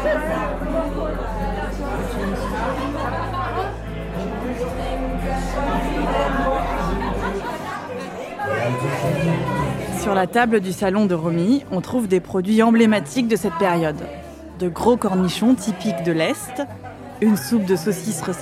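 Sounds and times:
party guests chatting at a home gathering: 0.0s - 18.4s
laughter: 0.2s - 10.0s
speech: 10.0s - 18.4s.

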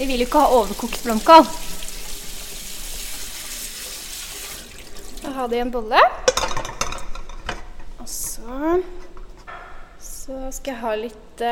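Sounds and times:
speech: 0.0s - 1.8s, 5.4s - 6.2s, 8.5s - 9.0s, 10.3s - 11.5s
cold tap water rinsing boiled cauliflower: 0.0s - 5.7s.

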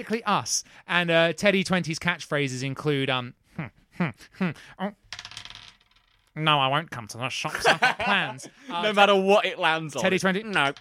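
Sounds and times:
speech: 0.0s - 5.1s, 6.4s - 10.7s
dice rattling: 5.1s - 6.3s, 10.1s - 10.7s
laughter: 7.5s - 9.2s.

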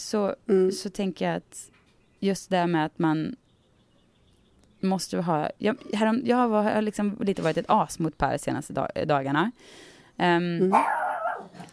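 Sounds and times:
speech: 0.0s - 3.4s, 4.8s - 11.7s
dog barking and yelping: 10.6s - 11.7s.

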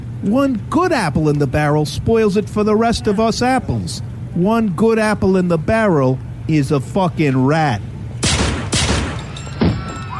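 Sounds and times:
low rumbling background: 0.0s - 10.1s
speech: 0.2s - 7.9s
gunshots during a cold-blooded shooting: 8.2s - 9.8s.

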